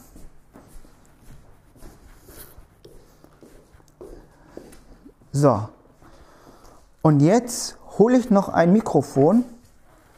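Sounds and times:
light shuffling and scuffing of feet: 0.0 - 7.0, 8.3 - 10.1
soft footsteps walking into the living room: 0.0 - 10.1
speech: 5.4 - 5.8, 7.0 - 9.6.

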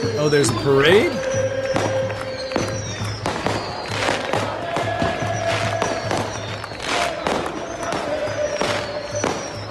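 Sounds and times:
fireworks bursting with sharp bangs and crackles: 0.0 - 9.6
whistling tones rising: 0.0 - 9.6
speech: 0.2 - 2.0.

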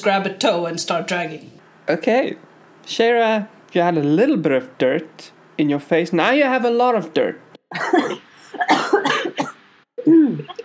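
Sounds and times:
speech: 0.0 - 8.7
harsh raspy coughing: 7.7 - 9.6.

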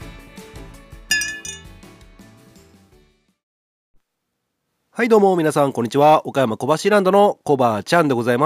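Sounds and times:
glasses clinking together in a milk toast: 1.1 - 1.7
speech: 5.0 - 8.4.

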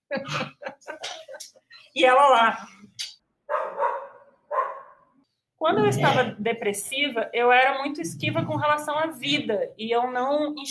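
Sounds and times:
speech: 0.1 - 0.5, 2.0 - 2.8, 5.6 - 10.6
laughter: 0.1 - 1.6
dog barking: 3.5 - 5.1.

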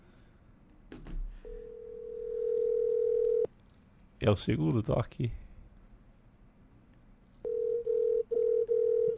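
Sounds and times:
telephone ringback tone while a call is placed: 1.6 - 3.5, 7.4 - 9.1
speech: 4.2 - 5.4.

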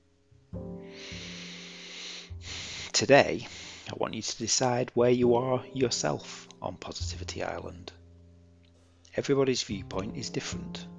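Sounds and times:
slow deep breathing during a guided relaxation exercise: 0.7 - 3.9
speech: 3.0 - 8.0, 9.2 - 10.9.

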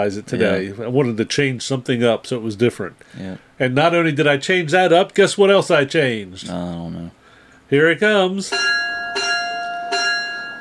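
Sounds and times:
speech: 0.0 - 8.8
bell ringing with sustained shimmering tone: 8.4 - 10.5.

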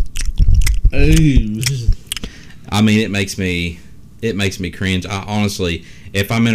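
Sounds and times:
person imitating open-mouth chewing with wet smacking mouth sounds: 0.0 - 2.4
speech: 1.0 - 1.9, 2.7 - 6.5.

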